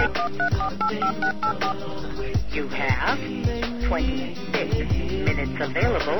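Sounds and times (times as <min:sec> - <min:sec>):
touch-tone keypad beeps dialing a phone number: 0:00.0 - 0:01.8
speech: 0:00.3 - 0:06.1.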